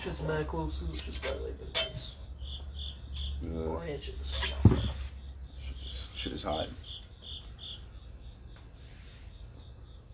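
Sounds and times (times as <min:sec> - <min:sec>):
speech: 0:00.0 - 0:02.2, 0:03.4 - 0:05.0, 0:06.2 - 0:07.0
cricket chirping in short high pulses: 0:00.0 - 0:10.1.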